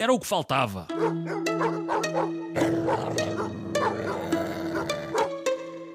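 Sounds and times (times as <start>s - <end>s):
speech: 0.0s - 1.9s
dogs barking and yipping: 1.0s - 5.4s.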